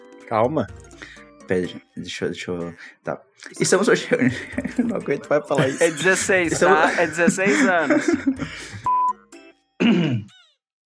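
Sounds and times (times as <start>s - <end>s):
speech: 0.3s - 0.9s, 1.5s - 8.9s
laughter: 3.8s - 8.9s
person clearing throat in rough rasping bursts: 5.6s - 6.6s, 9.8s - 10.4s.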